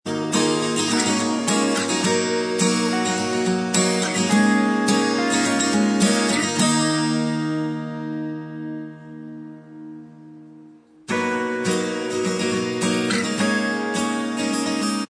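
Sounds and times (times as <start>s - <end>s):
instrumental backing track: 0.1s - 15.0s.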